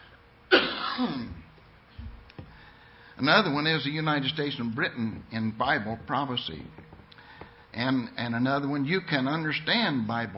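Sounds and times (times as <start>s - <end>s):
person coughing: 0.5s - 1.4s
speech: 1.0s - 1.4s, 3.2s - 6.9s, 7.8s - 10.3s.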